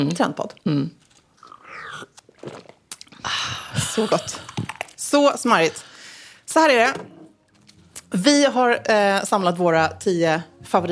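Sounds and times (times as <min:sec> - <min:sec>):
speech: 0:00.0 - 0:01.0, 0:04.0 - 0:04.5, 0:05.1 - 0:05.9, 0:06.5 - 0:07.1, 0:08.1 - 0:10.9
slurping sip of a drink: 0:01.4 - 0:03.2
swallow: 0:01.4 - 0:04.9.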